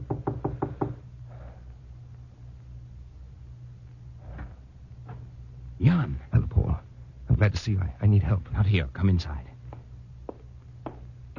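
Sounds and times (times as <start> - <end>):
knocking on a door: 0.0 - 1.0
low steady hum: 0.0 - 11.3
speech: 5.8 - 6.4, 7.4 - 9.5.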